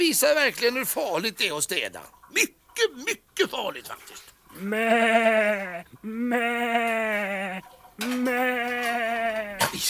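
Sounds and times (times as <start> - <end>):
speech: 0.0 - 9.8
sheep on a farm bleating before being given hay: 4.6 - 9.6.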